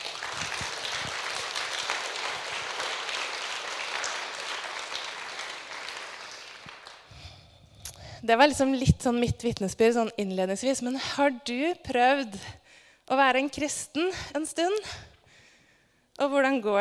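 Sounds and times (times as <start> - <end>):
audience applauding: 0.0 - 7.4
speech: 8.2 - 15.1, 16.2 - 16.7.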